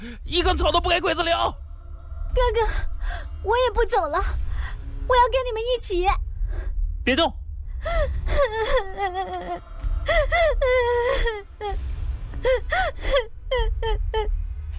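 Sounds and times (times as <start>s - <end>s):
speech: 0.0s - 1.6s, 2.3s - 4.4s, 5.1s - 6.2s, 7.1s - 14.4s
child wailing and sobbing in a wartime scene: 8.2s - 11.8s, 12.4s - 14.3s.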